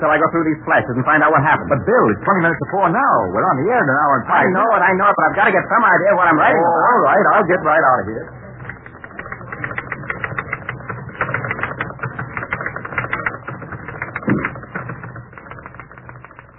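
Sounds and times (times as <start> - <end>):
speech: 0.0 - 8.4
low hum: 0.0 - 16.5
typewriter keys clattering: 8.6 - 16.5.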